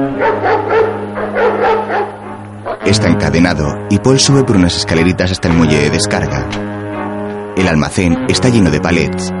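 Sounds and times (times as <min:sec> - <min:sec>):
guard dog barking at a warehouse on a cargo ship dock: 0:00.1 - 0:02.9
speech: 0:02.9 - 0:06.7, 0:07.5 - 0:09.3.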